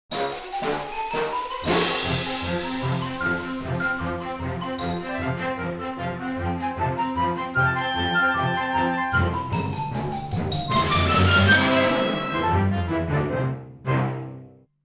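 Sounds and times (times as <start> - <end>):
cartoon music: 0.2 - 14.5.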